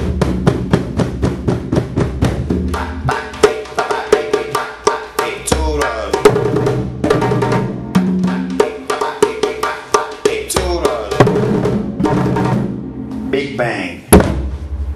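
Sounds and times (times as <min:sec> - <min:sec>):
drum being beaten: 0:00.0 - 0:13.5, 0:14.1 - 0:14.9.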